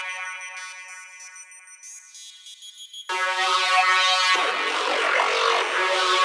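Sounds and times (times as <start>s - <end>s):
synths: 3.1s - 6.2s.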